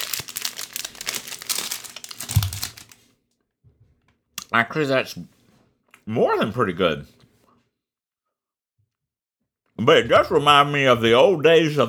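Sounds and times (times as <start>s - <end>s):
crinkling plastic wrapper of a pecan log candy: 0.0s - 3.0s
speech: 4.5s - 5.4s, 6.1s - 7.2s, 9.8s - 11.8s.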